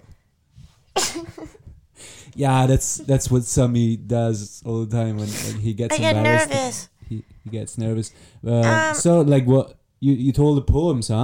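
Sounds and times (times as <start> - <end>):
person sneezing: 1.0 - 1.4
speech: 2.4 - 11.2.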